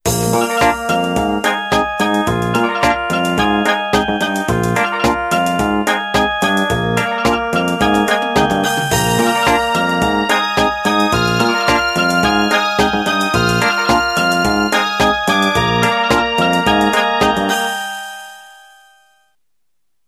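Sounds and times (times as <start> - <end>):
Nokia 8.1 Plus ringtone: 0.4 - 19.2.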